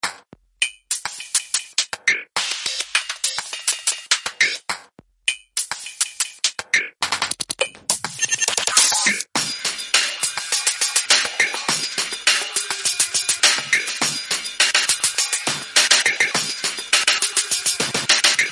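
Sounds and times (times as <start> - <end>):
glitch beat: 0.0 - 4.7, 5.6 - 18.5.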